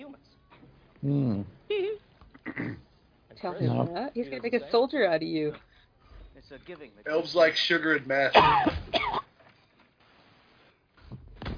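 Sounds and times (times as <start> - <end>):
speech: 1.0 - 1.9, 3.4 - 5.7, 6.4 - 9.2
coughing from a dry throat: 1.2 - 3.0, 7.5 - 9.5
throat clearing from a dry throat: 2.3 - 2.9, 8.4 - 9.3.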